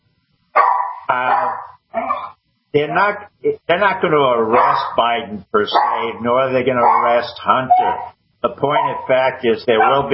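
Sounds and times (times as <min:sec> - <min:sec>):
dog barking: 0:00.6 - 0:02.4, 0:04.5 - 0:05.1, 0:05.7 - 0:06.2, 0:06.8 - 0:09.2, 0:09.8 - 0:10.1
speech: 0:02.8 - 0:10.1.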